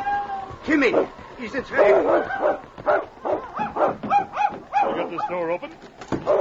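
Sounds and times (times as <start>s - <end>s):
speech: 0.6s - 3.1s, 5.1s - 6.3s
small dog barking and whining at a burning cabin: 1.8s - 5.4s, 6.2s - 6.3s.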